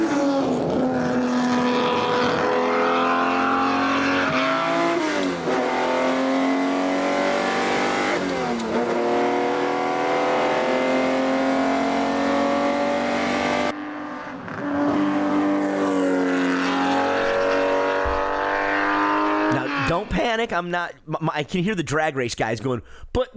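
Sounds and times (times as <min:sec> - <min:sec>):
1964 250 GTO engine revving through gear changes: 0:00.0 - 0:20.0
speech: 0:20.4 - 0:23.3.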